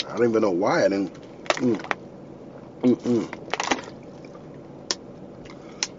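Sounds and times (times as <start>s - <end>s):
speech: 0.2s - 2.0s, 2.8s - 3.4s
person gulping water: 2.8s - 4.0s.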